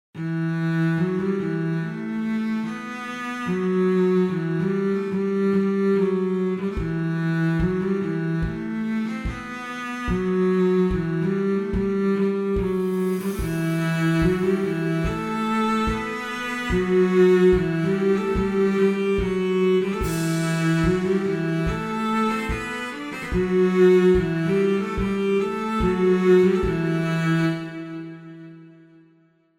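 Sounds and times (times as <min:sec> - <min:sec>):
cello: 0:00.2 - 0:29.2.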